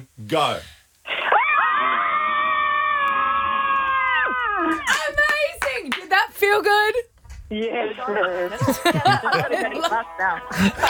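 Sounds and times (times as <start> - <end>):
speech: 0.3 - 0.8, 6.5 - 10.8
several women screaming together: 1.3 - 5.0
laughter: 8.2 - 10.8.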